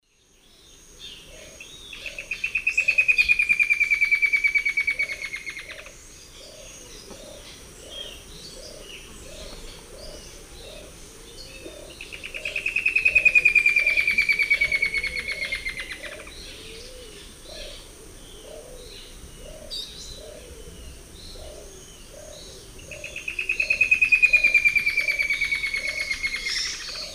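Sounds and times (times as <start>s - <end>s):
Dendroplex picus singing two song types: 0.0s - 27.1s.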